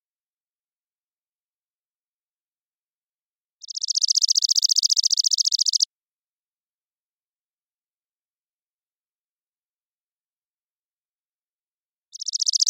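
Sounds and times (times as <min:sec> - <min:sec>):
Chipping sparrow, Spizella passerina, trilling song: 0:03.6 - 0:05.9, 0:12.1 - 0:12.6.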